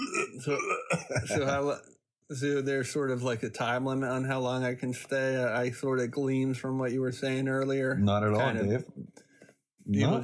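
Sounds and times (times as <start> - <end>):
loud croaky burp: 0.0 - 1.8
speech: 0.4 - 9.2, 9.8 - 10.2.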